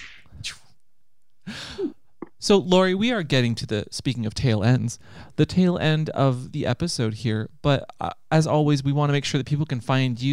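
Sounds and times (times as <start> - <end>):
whip crack sound effect: 0.0 - 0.7
speech: 1.8 - 10.3.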